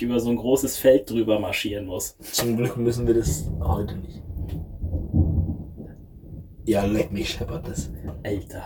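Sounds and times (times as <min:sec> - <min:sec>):
speech: 0:00.0 - 0:04.6, 0:06.6 - 0:08.6
deep rolling thunder rumbling: 0:02.5 - 0:08.6.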